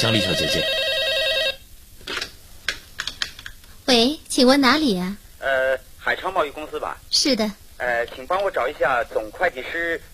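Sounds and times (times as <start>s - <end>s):
speech: 0.0s - 0.9s, 4.0s - 10.1s
brief electronic telephone ring: 0.0s - 1.6s.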